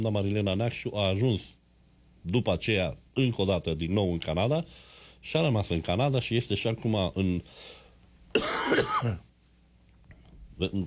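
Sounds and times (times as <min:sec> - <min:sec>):
speech: 0:00.0 - 0:01.6, 0:02.2 - 0:09.3, 0:10.6 - 0:10.8
person clearing throat: 0:08.4 - 0:09.2.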